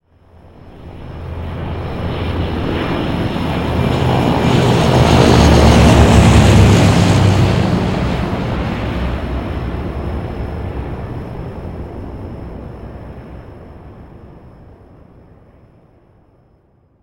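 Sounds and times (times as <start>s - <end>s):
C-130 aircraft flyby: 0.1s - 15.6s.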